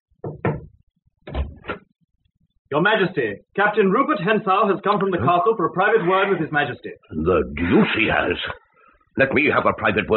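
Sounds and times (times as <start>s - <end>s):
servant knocking on a door: 0.2s - 1.7s
speech: 2.7s - 8.6s, 9.2s - 10.1s.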